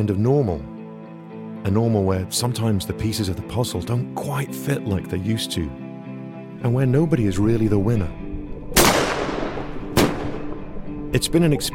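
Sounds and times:
speech: 0.0 - 0.7, 1.6 - 5.8, 6.6 - 8.2, 11.1 - 11.7
loud explosions: 8.8 - 10.7.

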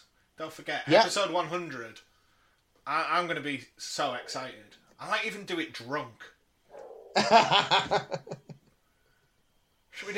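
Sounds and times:
speech: 0.4 - 2.1, 2.8 - 6.4, 7.1 - 8.4, 10.0 - 10.1
dog barking: 6.7 - 7.3
laughter: 7.2 - 8.6.

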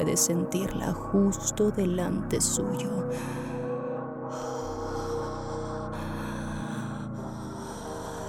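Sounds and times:
speech: 0.0 - 3.4
low rumbling drone: 0.0 - 8.2
creature breathing heavily over a man's face: 3.1 - 8.2.

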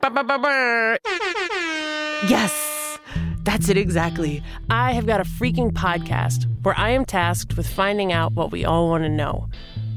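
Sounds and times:
person imitating an air horn: 0.0 - 3.4
speech: 0.1 - 1.6, 2.2 - 2.6, 3.4 - 9.8.

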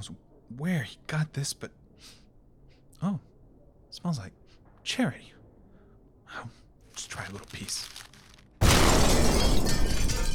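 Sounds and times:
speech: 0.0 - 2.2, 3.0 - 3.3, 3.9 - 5.4, 6.3 - 8.0
crackling debris: 6.8 - 10.3
devastating explosion downtown: 8.6 - 10.3.

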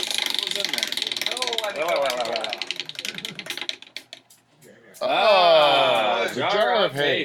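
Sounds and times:
prize wheel pointer clicking: 0.0 - 4.7
prize wheel spinning: 0.0 - 6.6
speech: 1.7 - 2.4, 6.8 - 7.2.

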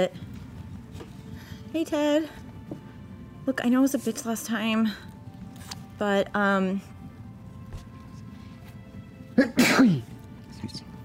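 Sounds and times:
speech: 0.0 - 0.2, 1.7 - 2.4, 3.4 - 6.9, 9.4 - 10.1
person sneezing: 9.4 - 10.1.

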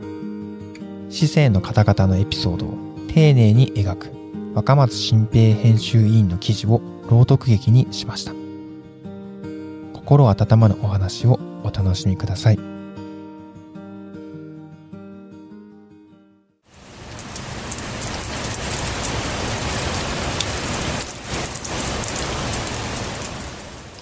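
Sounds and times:
soft melodic music: 0.0 - 16.6
speech: 1.1 - 8.4, 10.1 - 12.7
light rain pattering on a chilly morning: 16.7 - 24.0.

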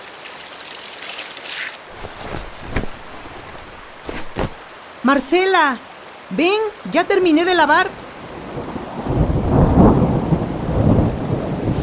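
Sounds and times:
steady hiss of approaching heavy rain: 1.8 - 6.6, 7.7 - 11.8
speech: 5.1 - 8.0
deep rolling rumble of thunder: 8.4 - 11.8.

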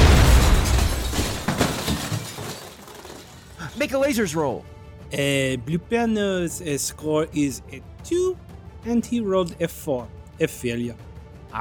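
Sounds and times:
explosion with deep rumbling boom: 0.0 - 1.1
crackling shattering debris from explosion: 0.0 - 3.9
speech: 3.8 - 11.6.

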